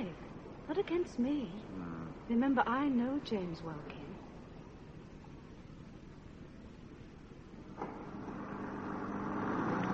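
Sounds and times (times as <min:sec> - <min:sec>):
speech: 0:00.8 - 0:04.0
car engine humming: 0:07.8 - 0:09.9.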